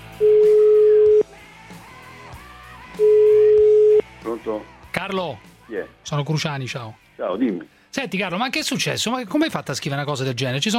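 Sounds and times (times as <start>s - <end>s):
telephone tone while a call is being placed: 0.1s - 1.2s, 3.0s - 4.0s
speech: 4.4s - 10.7s.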